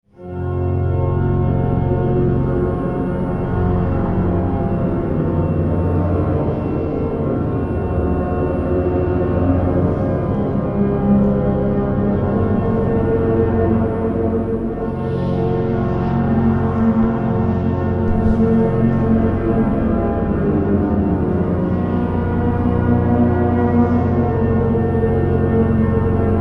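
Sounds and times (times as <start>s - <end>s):
hymn: 0.2s - 26.3s.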